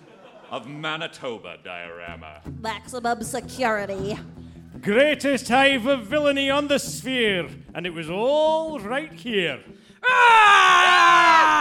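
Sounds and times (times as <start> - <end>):
laughter: 0.0 - 0.9
speech: 0.5 - 10.6
person screaming high-pitched: 10.0 - 11.5.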